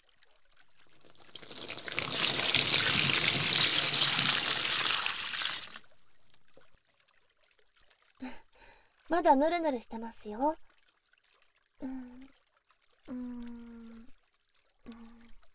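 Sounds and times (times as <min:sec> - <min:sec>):
water rinsing shampoo out of hair: 0:01.1 - 0:05.8
speech: 0:09.1 - 0:10.7, 0:11.8 - 0:12.4, 0:13.1 - 0:13.6.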